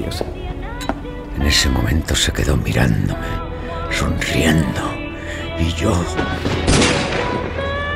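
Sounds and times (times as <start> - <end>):
speech: 0.0 - 0.4, 1.4 - 5.0, 5.6 - 7.6
gunshot: 6.2 - 7.8.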